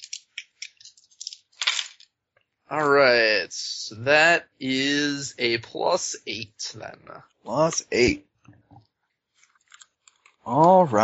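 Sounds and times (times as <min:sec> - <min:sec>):
physical dice rattling and clattering on a hard surface: 0:00.0 - 0:02.1
speech: 0:02.7 - 0:08.9, 0:10.4 - 0:11.0.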